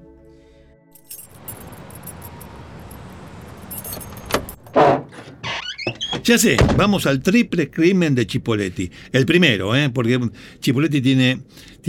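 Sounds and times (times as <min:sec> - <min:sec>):
sharp metallic chinks: 0:01.0 - 0:04.6
keys jangling and clinking: 0:01.0 - 0:04.8
steady engine-like hum: 0:01.1 - 0:04.7
speech: 0:06.3 - 0:11.8.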